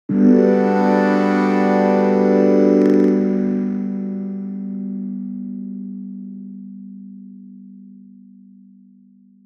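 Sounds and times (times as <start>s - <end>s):
trance rise up on jup8: 0.1s - 3.3s.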